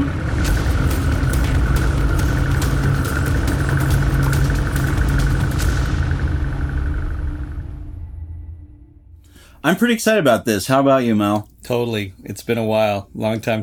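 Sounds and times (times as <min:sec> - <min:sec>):
boat engine rumbling as it departs the dock: 0:00.0 - 0:09.5
speech: 0:09.6 - 0:13.6.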